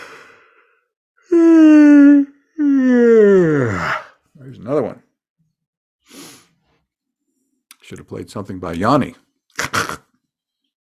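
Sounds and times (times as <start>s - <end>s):
soft breathy inhale: 0.0s - 1.0s
person yawning: 1.3s - 4.2s
speech: 4.6s - 5.0s, 7.9s - 9.2s.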